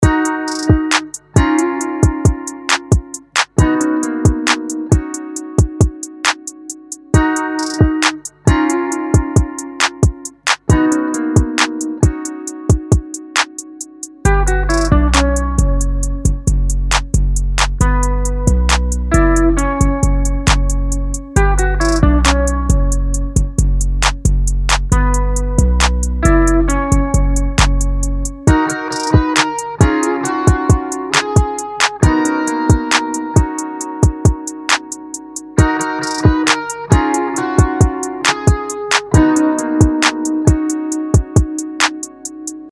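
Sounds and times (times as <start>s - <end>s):
electric guitar loop: 0.0s - 42.7s.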